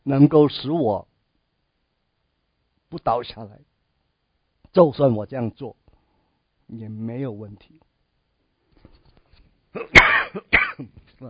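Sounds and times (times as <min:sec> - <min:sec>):
speech: 0:00.0 - 0:01.1, 0:02.9 - 0:03.7, 0:04.7 - 0:05.8, 0:06.7 - 0:07.9, 0:09.8 - 0:11.2
person coughing harshly: 0:09.8 - 0:11.0.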